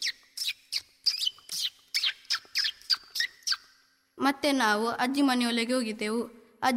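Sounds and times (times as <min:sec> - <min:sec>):
parrots squawking outside a house doorway: 0:00.0 - 0:03.6
speech: 0:04.2 - 0:06.7.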